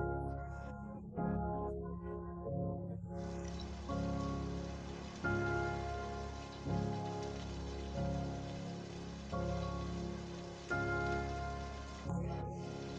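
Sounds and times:
slow soft musical chords: 0.0s - 12.9s
steady rain falling: 3.2s - 12.9s.

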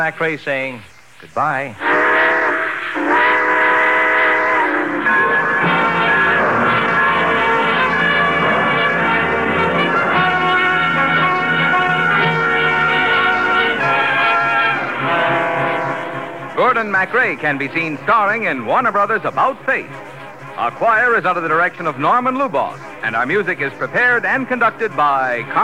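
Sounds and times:
speech: 0.0s - 2.0s, 16.7s - 25.6s
train whistle sounding in long sustained chords pulling out of station: 1.8s - 25.6s.

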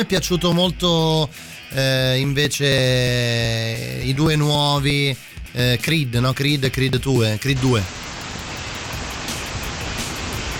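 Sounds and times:
speech: 0.0s - 8.0s
steady rain falling: 7.6s - 10.5s.

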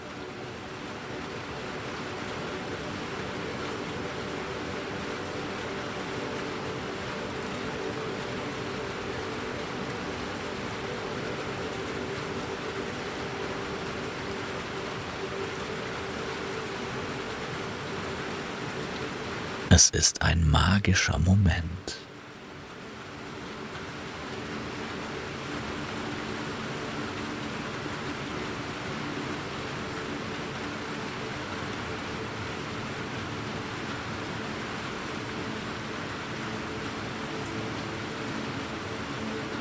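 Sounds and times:
steady rain pattering on a glass roof over an indoor area: 0.0s - 19.7s, 22.0s - 39.5s
speech: 19.8s - 22.0s.

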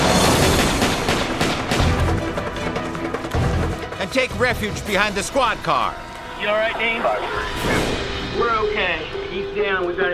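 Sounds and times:
gunshots in exchange of gunfire beside a squad car: 0.0s - 3.7s
speech: 4.1s - 10.1s.

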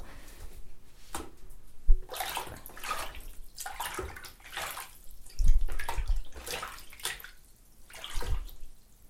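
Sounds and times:
water waves in a bowl slapping against a dropped object: 2.0s - 8.9s.

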